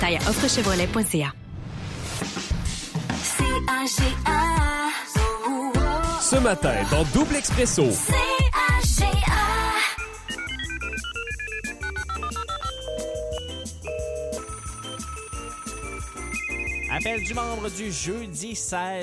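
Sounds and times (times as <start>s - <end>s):
speech: 0.0s - 1.4s, 3.6s - 4.9s, 6.3s - 9.1s, 17.0s - 19.0s
steady rhythmic beat: 2.4s - 19.0s
telephone keypad dialing tones: 10.3s - 16.8s.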